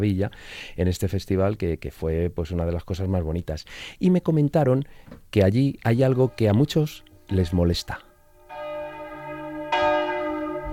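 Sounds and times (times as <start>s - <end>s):
speech: 0.0s - 8.1s
church bells ringing in a village: 6.0s - 10.7s.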